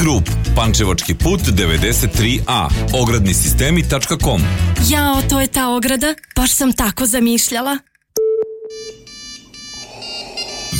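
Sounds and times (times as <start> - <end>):
speech: 0.0 - 7.9
incoming video call ringtone on a phone: 8.2 - 10.7.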